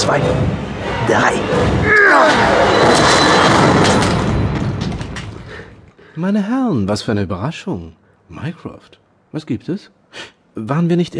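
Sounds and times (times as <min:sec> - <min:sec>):
speech: 0:00.1 - 0:03.3, 0:06.2 - 0:11.1
heavy door being forced open with splintering impact: 0:01.9 - 0:05.5
rattling debris: 0:02.3 - 0:05.8.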